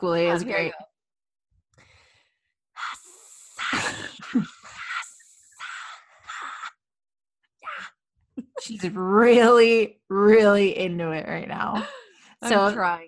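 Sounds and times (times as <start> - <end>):
speech: 0.0 - 0.9, 4.3 - 4.6, 8.6 - 13.0
heavy breathing into a microphone: 1.8 - 6.8
voice hissing into a microphone imitating a snake's speech: 2.8 - 6.8.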